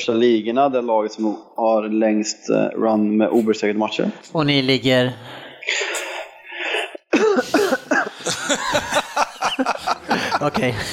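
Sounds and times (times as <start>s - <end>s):
speech: 0.0s - 5.3s, 10.4s - 10.9s
person coughing: 5.7s - 8.3s
laughter: 7.2s - 10.9s.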